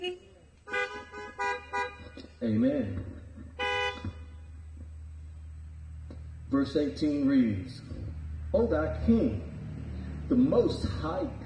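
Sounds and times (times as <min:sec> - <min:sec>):
several car horns honking: 0:00.0 - 0:02.4, 0:03.4 - 0:04.9
low engine rumble: 0:00.0 - 0:11.4
speech: 0:02.5 - 0:03.2, 0:06.6 - 0:09.5, 0:10.3 - 0:11.4.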